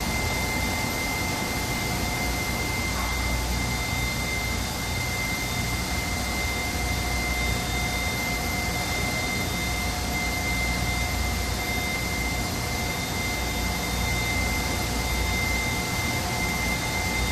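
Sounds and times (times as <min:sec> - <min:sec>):
petroleum plant machinery whine: 0:00.0 - 0:17.3.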